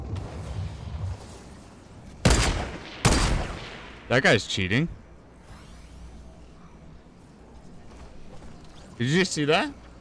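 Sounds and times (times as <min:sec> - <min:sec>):
gunfire in a video game: 0:02.2 - 0:04.0
speech: 0:04.1 - 0:05.0, 0:09.0 - 0:09.8.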